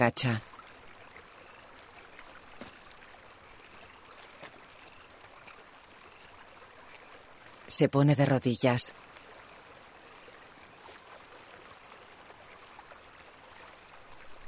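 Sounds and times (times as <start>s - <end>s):
speech: 0.0s - 0.5s, 7.7s - 9.1s
faint splashes: 0.0s - 7.8s, 8.9s - 14.4s
river flowing past its bank: 0.0s - 14.4s.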